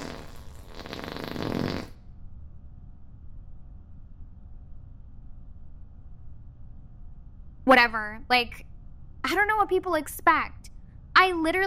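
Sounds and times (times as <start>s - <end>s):
loud sputtering buzzy fart: 0.0s - 2.0s
faint low rumble: 2.0s - 11.6s
speech: 7.7s - 10.6s, 11.2s - 11.6s.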